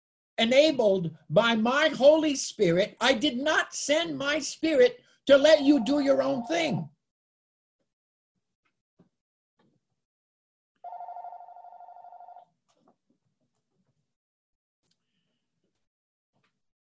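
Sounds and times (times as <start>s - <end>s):
speech: 0.4s - 6.9s
loud telephone bell ringing: 10.8s - 12.4s.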